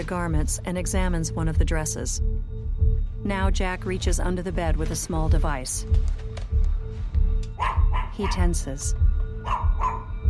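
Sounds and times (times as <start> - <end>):
speech: 0.0 - 6.5, 8.2 - 9.6
dog barking: 7.6 - 8.5, 9.4 - 10.2.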